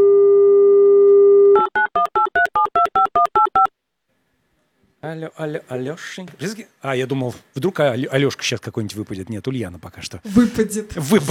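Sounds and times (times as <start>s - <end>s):
telephone dial tone: 0.0s - 3.7s
speech: 5.1s - 11.2s.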